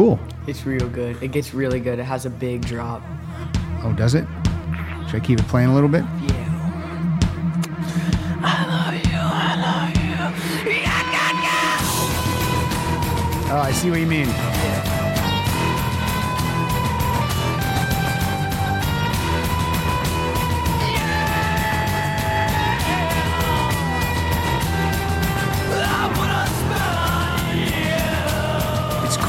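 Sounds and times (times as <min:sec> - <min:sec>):
eerie dense rock song with sustained droning tones: 0:00.0 - 0:29.2
speech: 0:00.1 - 0:04.4, 0:05.1 - 0:06.3, 0:13.5 - 0:14.9
strained wailing vocal rising into scream-like cries: 0:10.6 - 0:17.4, 0:19.7 - 0:29.2.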